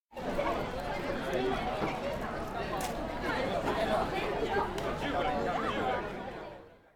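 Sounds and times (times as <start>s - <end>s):
market chatter: 0.3s - 5.8s.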